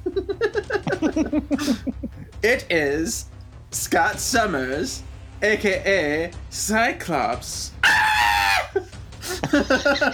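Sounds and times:
breathy laughter: 0:00.0 - 0:02.3, 0:08.8 - 0:10.1
speech: 0:02.4 - 0:07.8, 0:09.5 - 0:10.1
person letting out a high squawking scream imitating a cartoon character: 0:07.8 - 0:08.8.

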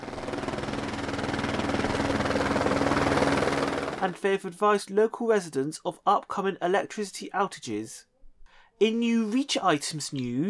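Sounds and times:
helicopter rotor and engine flying overhead: 0:00.0 - 0:04.2
speech: 0:04.1 - 0:08.1, 0:08.8 - 0:10.4.

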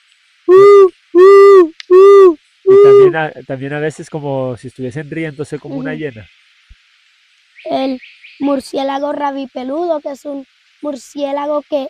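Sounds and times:
Puerto Rican screech owl hooting: 0:00.5 - 0:03.2
speech: 0:03.1 - 0:06.4, 0:07.6 - 0:11.8.

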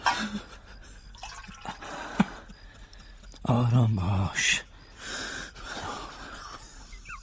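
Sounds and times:
water dripping: 0:00.8 - 0:03.6
water being poured to drink: 0:01.1 - 0:01.8
speech: 0:03.5 - 0:04.7.

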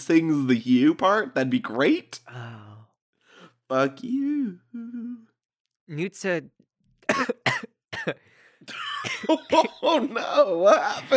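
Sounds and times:
speech: 0:00.0 - 0:02.7, 0:03.7 - 0:05.3, 0:05.9 - 0:07.4, 0:08.0 - 0:11.1
harsh coughing: 0:07.0 - 0:09.6
laughter: 0:08.7 - 0:11.1.

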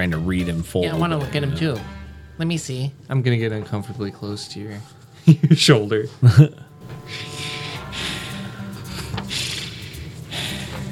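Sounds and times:
speech: 0:00.0 - 0:07.5
soggy hat giving off a wheezy breath-like hiss: 0:07.0 - 0:10.9.

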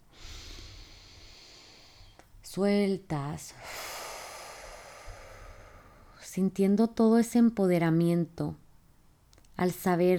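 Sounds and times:
deep inhale through the nose: 0:00.1 - 0:02.2, 0:03.6 - 0:06.2
speech: 0:02.6 - 0:03.8, 0:06.3 - 0:08.6, 0:09.6 - 0:10.1.

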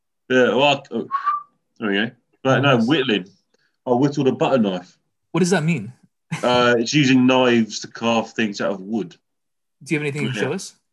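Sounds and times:
speech: 0:00.3 - 0:09.2, 0:09.8 - 0:10.8
person whistling a short clear tone: 0:01.1 - 0:01.6
voiced vocal sounds: 0:10.2 - 0:10.6.

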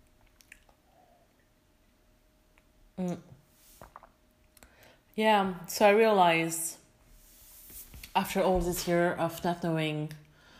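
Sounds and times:
person drinking water with wet gulp and swallow: 0:00.2 - 0:01.0, 0:03.0 - 0:04.2
quiet room hiss: 0:01.1 - 0:09.2
speech: 0:03.0 - 0:03.3, 0:05.2 - 0:06.8, 0:08.2 - 0:10.2.

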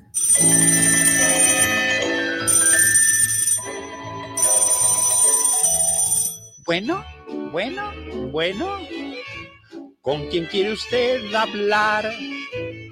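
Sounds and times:
telephone bell ringing: 0:00.0 - 0:06.6
speech: 0:06.7 - 0:09.0, 0:10.0 - 0:12.4.

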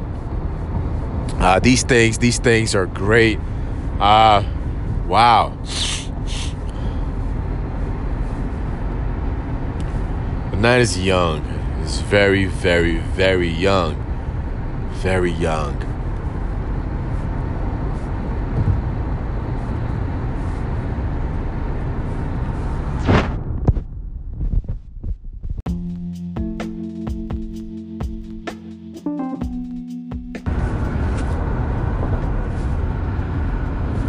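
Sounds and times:
road noise from a car driving on a highway: 0:00.0 - 0:24.4, 0:25.7 - 0:29.7, 0:30.3 - 0:34.0
speech: 0:01.4 - 0:06.5, 0:10.6 - 0:14.0, 0:15.0 - 0:15.9
tonal hums: 0:25.7 - 0:30.7.

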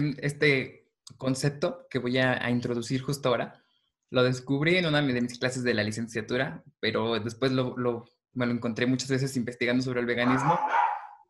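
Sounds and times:
speech: 0:00.0 - 0:10.9
dog barking: 0:10.2 - 0:11.2.

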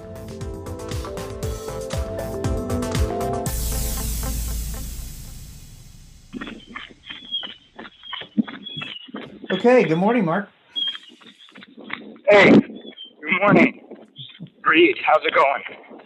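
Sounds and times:
music: 0:00.0 - 0:06.3
whoosh: 0:03.5 - 0:07.4
running footsteps: 0:06.4 - 0:16.0
speech: 0:09.6 - 0:10.6, 0:12.3 - 0:12.7, 0:13.4 - 0:13.7, 0:15.1 - 0:15.8.

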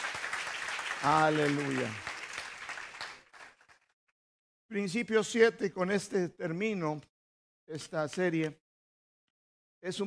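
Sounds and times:
crowd clapping: 0:00.0 - 0:04.0
speech: 0:01.0 - 0:02.1, 0:04.7 - 0:07.1, 0:07.7 - 0:08.6, 0:09.8 - 0:10.0.

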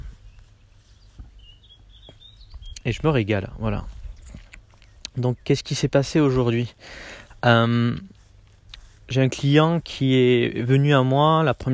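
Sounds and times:
birds singing in a country garden: 0:00.0 - 0:11.7
low outdoor rumble: 0:00.0 - 0:11.7
soft thuds: 0:01.0 - 0:02.7
speech: 0:02.8 - 0:04.0, 0:05.2 - 0:08.2, 0:09.1 - 0:11.7.

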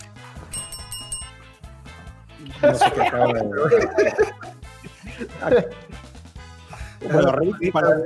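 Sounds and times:
steady bed of music: 0:00.0 - 0:08.0
bright ringing notification bell dinging: 0:00.5 - 0:01.5
speech: 0:02.4 - 0:04.3, 0:05.4 - 0:05.9, 0:07.0 - 0:08.0
laughter: 0:02.4 - 0:06.0.

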